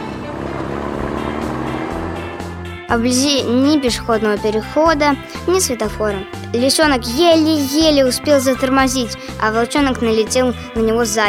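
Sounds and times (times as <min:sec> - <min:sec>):
trucks and cars speeding along a big road: 0:00.0 - 0:04.2
speech: 0:02.9 - 0:11.2.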